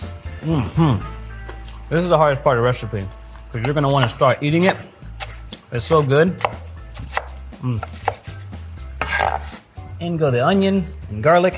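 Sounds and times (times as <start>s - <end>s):
speech: 0.4s - 1.2s, 1.9s - 4.9s, 5.7s - 6.6s, 7.6s - 8.0s, 10.0s - 11.5s
knife chopping bacon on a cutting board: 3.6s - 8.4s, 9.0s - 9.6s.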